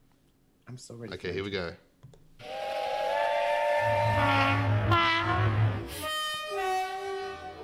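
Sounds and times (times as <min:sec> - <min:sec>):
speech: 0:00.7 - 0:02.5
train horn blaring: 0:02.4 - 0:07.6.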